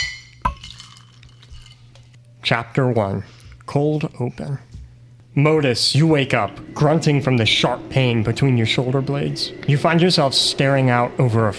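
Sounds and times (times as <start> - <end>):
glasses clinking in a toast: 0.0 - 1.9
low hum: 0.0 - 11.5
speech: 2.5 - 4.7, 5.4 - 11.5.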